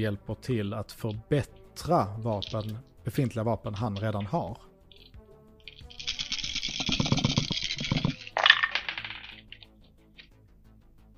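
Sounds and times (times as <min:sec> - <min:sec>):
speech: 0:00.0 - 0:04.7
dice rattling and rolling onto a hard surface: 0:05.7 - 0:09.8.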